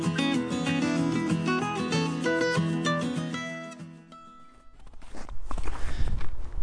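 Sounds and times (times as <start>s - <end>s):
music: 0.0s - 4.7s
hiking footsteps crunching on a trail: 4.7s - 6.6s.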